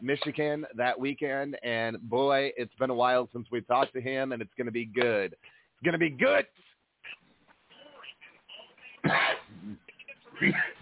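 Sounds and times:
speech: 0:00.0 - 0:07.2, 0:09.0 - 0:10.7
person coughing: 0:09.0 - 0:10.7.

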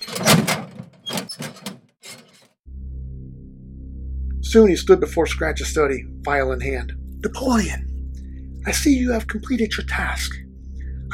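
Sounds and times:
door rattling and banging: 0:00.0 - 0:02.5
low steady droning tone: 0:02.6 - 0:11.1
speech: 0:04.5 - 0:07.9, 0:08.6 - 0:10.4.

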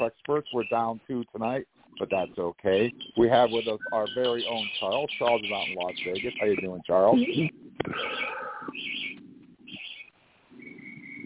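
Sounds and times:
speech: 0:00.0 - 0:09.0
birds chirping and twittering: 0:00.0 - 0:11.2
soft low cooing-like murmur: 0:02.0 - 0:11.2.

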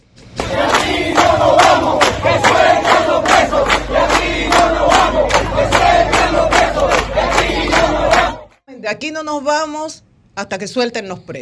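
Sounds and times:
large protest crowd chanting demands for prisoners' release in unison: 0:00.4 - 0:08.6
speech: 0:08.9 - 0:11.4.

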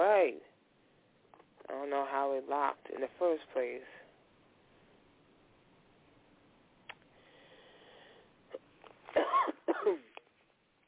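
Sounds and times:
speech: 0:00.0 - 0:00.5, 0:01.7 - 0:04.0
faint click: 0:06.8 - 0:07.1
harsh coughs: 0:08.5 - 0:10.2.

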